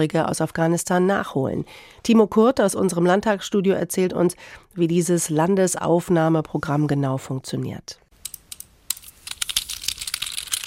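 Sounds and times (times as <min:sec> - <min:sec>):
speech: 0:00.0 - 0:08.0
computer mouse clicks: 0:08.2 - 0:10.6.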